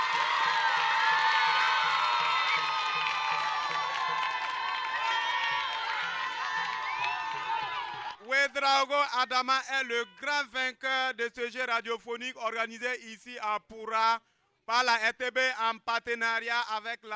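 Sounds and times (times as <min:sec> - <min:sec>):
high-pitched whoops and excited shouts: 0:00.0 - 0:08.3
large crowd cheering and applauding: 0:00.0 - 0:08.4
speech: 0:08.6 - 0:17.1.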